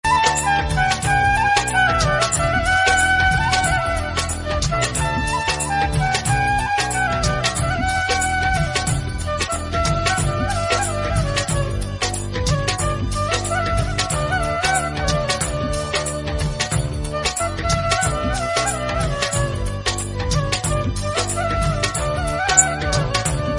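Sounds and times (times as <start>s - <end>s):
bansuri flute ringtone: 0.0s - 23.5s.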